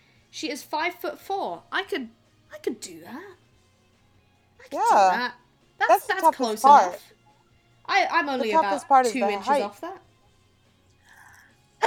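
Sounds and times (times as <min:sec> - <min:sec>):
speech: 0:00.3 - 0:03.4, 0:04.6 - 0:07.2, 0:07.9 - 0:10.1
faint brief intake of breath: 0:11.0 - 0:11.6.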